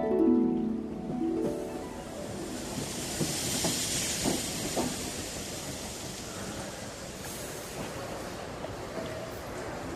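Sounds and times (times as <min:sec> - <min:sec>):
steam escaping from a steam train: 0:00.1 - 0:09.6.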